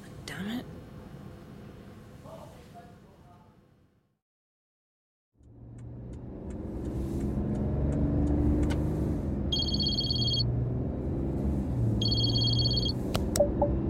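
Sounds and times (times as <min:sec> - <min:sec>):
car engine revving and driving away: 0:05.4 - 0:13.8
high electronic beeping: 0:09.6 - 0:10.4, 0:12.0 - 0:13.8.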